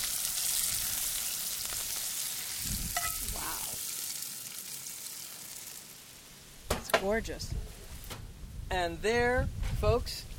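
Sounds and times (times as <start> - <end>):
poblano and pepper vegetable hash sizzling over a caveman T-bone steak in a skillet: 0.0 - 6.7
speech: 7.0 - 7.7, 8.7 - 10.3.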